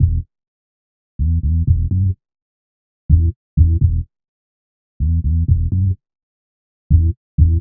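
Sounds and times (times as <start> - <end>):
funky underground bass loop in E: 0.0 - 0.2, 1.3 - 2.1, 3.1 - 4.0, 5.2 - 6.0, 6.9 - 7.5.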